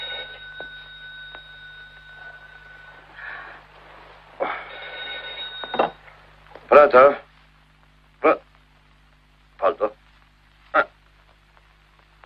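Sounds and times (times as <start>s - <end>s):
telephone ringing: 0.0s - 3.6s, 4.4s - 6.1s
low hum: 0.0s - 12.2s
speech: 6.8s - 7.2s.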